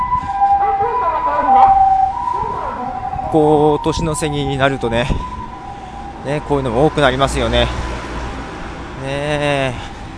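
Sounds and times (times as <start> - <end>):
ambulance siren wailing: 0.0 - 8.0
faint low rumble of traffic: 0.0 - 10.1
speech: 3.3 - 5.4, 6.2 - 7.8, 9.0 - 9.9.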